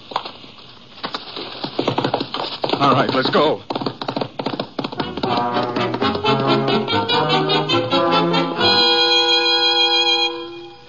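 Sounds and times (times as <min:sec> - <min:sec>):
faint steady hiss: 0:00.0 - 0:10.8
riderless horses' hooves clopping while trotting: 0:01.0 - 0:06.9
speech: 0:02.8 - 0:03.8.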